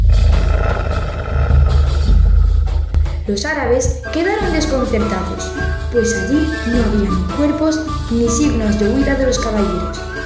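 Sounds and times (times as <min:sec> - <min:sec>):
wolves snarling and growling: 0:00.1 - 0:02.9
speech: 0:03.3 - 0:10.1.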